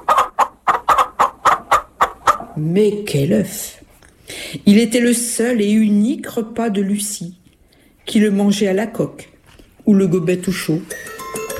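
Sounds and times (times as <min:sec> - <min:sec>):
hen cackling loudly while laying an egg: 0:00.0 - 0:02.6
speech: 0:02.6 - 0:07.4, 0:08.1 - 0:09.3, 0:09.9 - 0:11.1.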